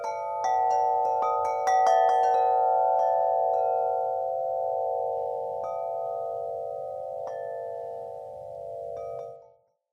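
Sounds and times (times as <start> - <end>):
Aqua Tune metal wind chimes 51 inches: 0.0 - 9.9.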